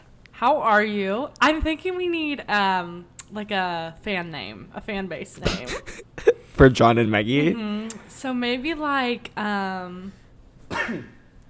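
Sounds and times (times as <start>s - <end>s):
speech: 0.4s - 10.2s, 10.9s - 11.2s
person coughing: 5.4s - 6.4s, 10.7s - 11.2s.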